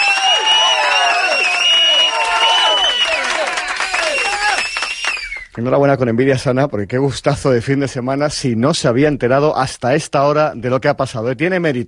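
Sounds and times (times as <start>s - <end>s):
crowd applauding for a listener: 0.0s - 5.6s
speech: 5.6s - 11.8s.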